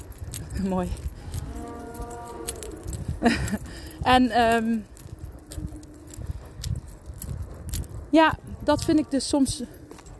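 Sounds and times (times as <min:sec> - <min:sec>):
speech: 0:00.6 - 0:01.1, 0:03.2 - 0:04.9, 0:08.1 - 0:09.8
cow mooing long and low: 0:01.3 - 0:02.9
laughter: 0:03.2 - 0:03.7.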